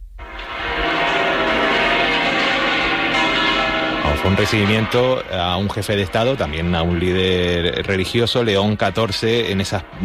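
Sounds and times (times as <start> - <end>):
cathedral church bells ringing in a peal: 0.2 - 10.0
speech: 4.2 - 10.0.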